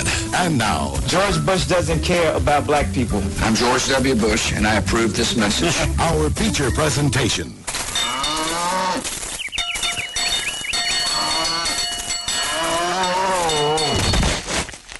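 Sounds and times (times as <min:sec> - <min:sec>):
speech: 0:00.4 - 0:07.7
cowbell clanking: 0:07.9 - 0:08.7, 0:09.6 - 0:14.3
cow mooing: 0:08.0 - 0:09.0, 0:11.0 - 0:14.1.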